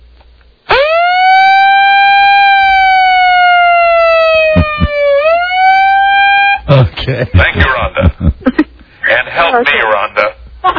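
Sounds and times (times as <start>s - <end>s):
siren wailing: 0.7s - 6.7s
laughter: 4.4s - 5.1s, 6.7s - 8.7s
speech: 7.1s - 8.3s, 9.4s - 10.7s.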